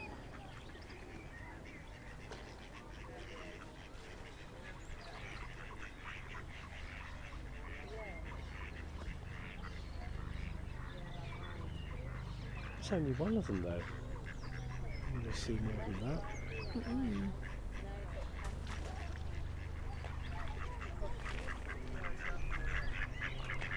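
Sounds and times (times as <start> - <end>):
faint voices murmuring: 0.0 - 23.7
duckling quacking: 1.4 - 23.7
speech: 12.9 - 14.0, 15.3 - 17.6.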